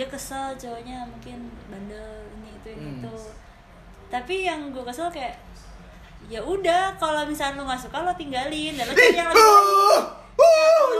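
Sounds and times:
speech: 0.0s - 3.5s, 4.1s - 10.9s
loud high-pitched shout: 9.0s - 10.9s.

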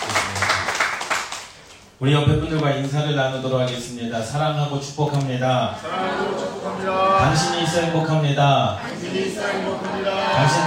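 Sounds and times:
audience applauding: 0.0s - 1.6s
speech: 2.0s - 10.6s.

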